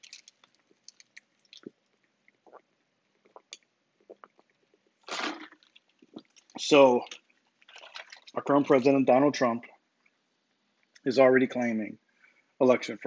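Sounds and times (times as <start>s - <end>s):
wet mouth clicks: 0.0s - 8.3s
person drinking water: 0.0s - 9.0s
swallow or gulp of water: 0.7s - 8.5s
speech: 6.6s - 7.2s, 8.4s - 9.7s, 11.0s - 12.0s, 12.6s - 13.0s.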